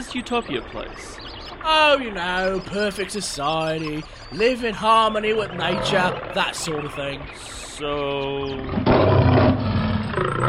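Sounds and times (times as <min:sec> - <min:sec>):
speech: 0:00.0 - 0:08.9
laughter: 0:01.7 - 0:08.7
tiger roaring and snarling while mauling: 0:05.4 - 0:07.3, 0:08.7 - 0:10.4.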